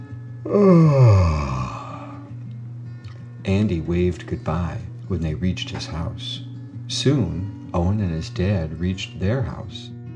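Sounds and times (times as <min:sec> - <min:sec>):
speech: 0:00.4 - 0:01.0, 0:03.7 - 0:10.0
person yawning: 0:00.4 - 0:02.3.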